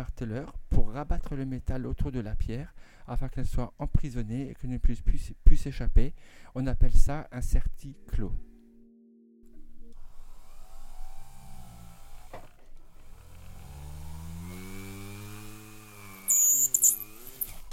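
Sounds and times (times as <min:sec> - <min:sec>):
speech: 0:00.0 - 0:08.5
polishing brush motor whine: 0:10.0 - 0:17.7
small rotating cotton polishing brush with polishing paste on metal jewellery piece: 0:14.8 - 0:17.7.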